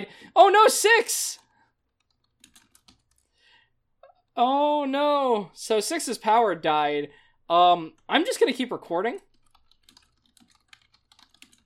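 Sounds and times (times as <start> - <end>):
speech: 0.0 - 1.4, 4.4 - 9.3
typing on a computer keyboard: 2.0 - 3.3, 9.2 - 11.6.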